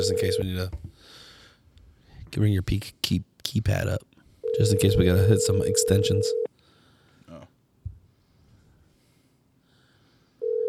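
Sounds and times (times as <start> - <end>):
electronic ringback tone of an outgoing phone call: 0.0 - 0.4, 4.4 - 6.5, 10.4 - 10.6
speech: 0.0 - 1.2, 2.3 - 6.5.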